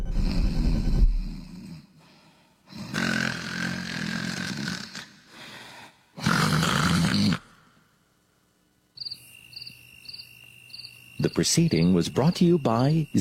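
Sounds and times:
person snoring: 0:00.1 - 0:02.0, 0:02.7 - 0:07.5
faint rhythmic chirping: 0:08.9 - 0:13.1
speech: 0:11.4 - 0:13.1.

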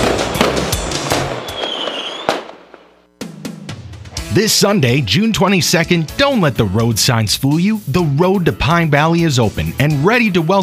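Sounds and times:
fireworks display booming: 0:00.0 - 0:03.1
speech: 0:04.4 - 0:10.6.

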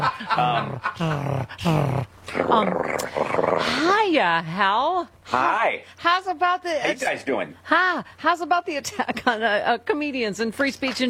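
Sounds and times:
laughter: 0:00.0 - 0:01.4
speech: 0:00.0 - 0:11.0
voice imitating a cat purring: 0:00.4 - 0:04.0.

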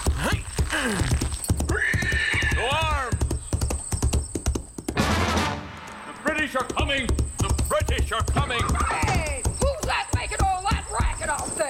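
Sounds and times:
horse hooves clip-clopping: 0:00.0 - 0:11.6
speech: 0:00.8 - 0:01.2, 0:08.0 - 0:09.2
horse whinnying: 0:00.8 - 0:03.2.

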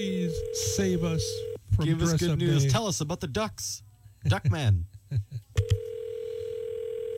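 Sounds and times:
speech: 0:00.0 - 0:05.4
telephone line ringing while the caller waits for an answer: 0:00.3 - 0:01.6, 0:05.7 - 0:07.1.

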